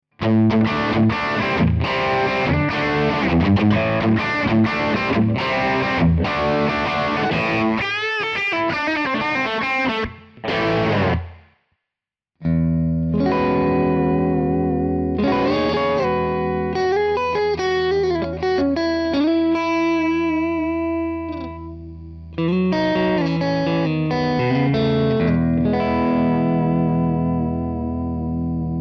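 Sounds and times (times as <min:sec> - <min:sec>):
Strato electric guitar: 0:00.1 - 0:11.5, 0:12.4 - 0:28.8.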